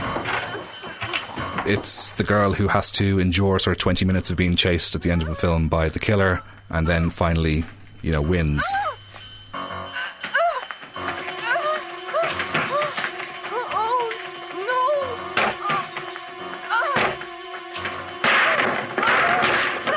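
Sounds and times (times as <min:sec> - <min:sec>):
speech: 0:01.6 - 0:09.0
person crying out and whimpering: 0:05.0 - 0:05.7, 0:08.6 - 0:09.1, 0:10.0 - 0:16.0, 0:16.6 - 0:17.2, 0:18.5 - 0:19.9
furniture and a door being smashed: 0:12.1 - 0:13.6, 0:15.4 - 0:19.9.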